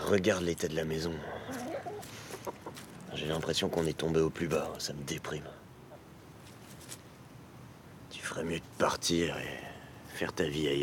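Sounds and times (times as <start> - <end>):
speech: 0.1 - 1.5, 2.4 - 5.6, 8.3 - 10.8
hen clucking: 1.2 - 2.9.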